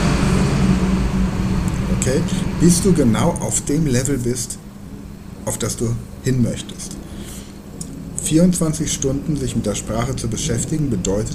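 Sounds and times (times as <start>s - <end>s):
heavy road vehicle engine drone with road noise: 0.0s - 11.3s
speech: 2.0s - 4.6s, 5.5s - 7.0s, 8.2s - 11.3s.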